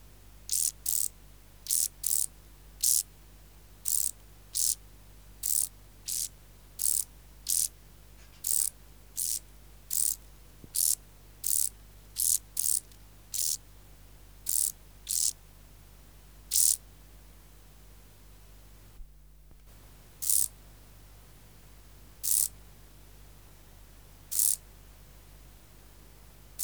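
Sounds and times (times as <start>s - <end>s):
faint steady hum: 0.0s - 26.6s
common field grasshopper Chorthippus brunneus chirping: 0.5s - 3.1s, 3.8s - 4.8s, 5.4s - 7.7s, 8.4s - 13.6s, 14.4s - 15.4s, 16.5s - 16.8s, 20.2s - 20.6s, 22.2s - 22.6s, 24.3s - 24.6s.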